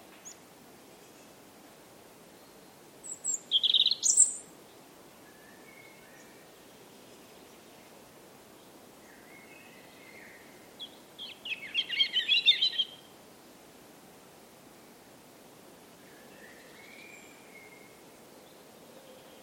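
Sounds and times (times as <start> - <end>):
European robin singing: 2.4 - 4.5, 8.6 - 13.1, 16.1 - 18.0.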